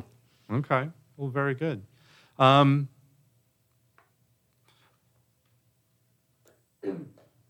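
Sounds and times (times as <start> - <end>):
speech: 0.5 - 3.0
throat clearing: 6.8 - 7.4.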